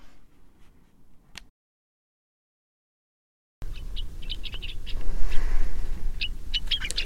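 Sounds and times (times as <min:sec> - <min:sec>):
flock of gray-crowned rosy finches calling outdoors at a feeder: 0:03.6 - 0:07.0.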